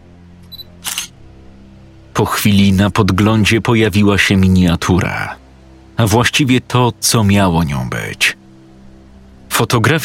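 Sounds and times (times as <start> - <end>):
camera shutter click: 0.8 - 1.1
speech: 2.2 - 5.4, 6.0 - 8.4, 9.6 - 10.0.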